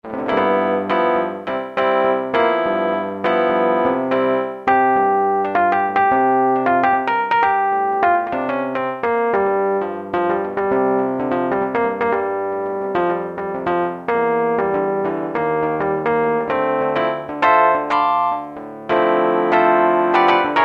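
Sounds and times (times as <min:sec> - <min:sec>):
hard electric piano on Roland U-110 factory patch: 0:00.0 - 0:20.6.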